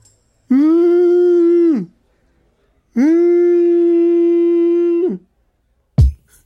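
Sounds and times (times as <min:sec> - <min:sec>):
man's voice imitating a whale call with howling tones: 0:00.5 - 0:02.0, 0:02.9 - 0:05.3.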